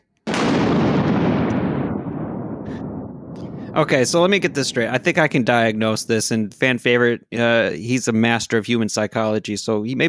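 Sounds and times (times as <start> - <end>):
booming explosion sound effect: 0.3 - 7.0
speech: 3.8 - 10.0.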